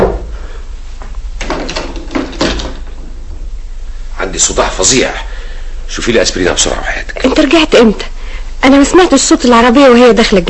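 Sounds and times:
door and handle clunking and rattling in a house: 1.4 - 2.9
speech: 4.4 - 10.4.

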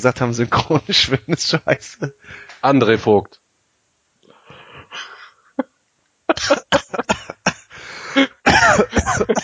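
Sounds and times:
speech: 0.0 - 3.4
laughter: 6.3 - 9.4
person coughing after choking on something: 6.3 - 9.4.

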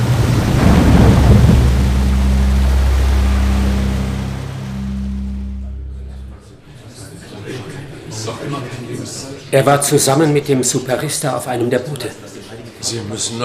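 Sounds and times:
huge flood wave crashing through a city gate: 0.0 - 6.4
low rumble: 0.0 - 6.7
speech: 9.5 - 13.4.

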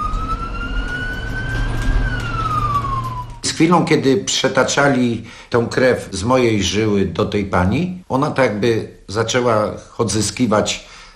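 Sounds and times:
low rumble of the moving ambulance: 0.0 - 3.5
ambulance siren wailing: 0.0 - 4.6
speech: 3.6 - 10.9.

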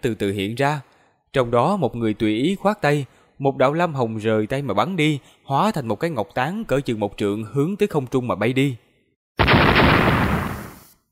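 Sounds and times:
speech: 0.0 - 8.8
explosive burst sound effect: 9.4 - 11.0.

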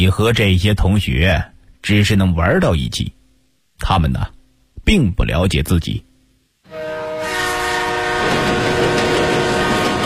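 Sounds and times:
speech: 0.0 - 3.2, 3.8 - 6.1
high-speed train speeding along the Beijing–Guangzhou line: 6.7 - 10.0.

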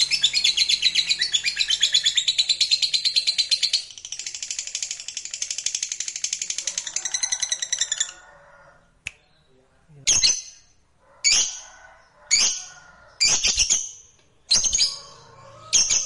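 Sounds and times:
lovebird chattering song of high scratchy chirps: 0.0 - 8.2, 12.3 - 16.0.

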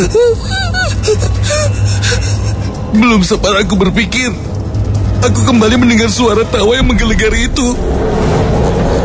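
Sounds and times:
speech: 0.0 - 2.1, 2.9 - 4.5, 5.2 - 8.9
strained whimpering breaths: 0.0 - 3.0.

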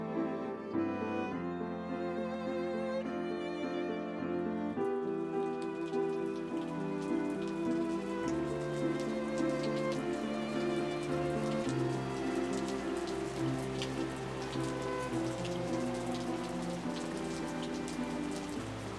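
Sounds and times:
sustained soft musical tones: 0.1 - 18.9
steady rain pattering on a surface: 4.6 - 18.9.

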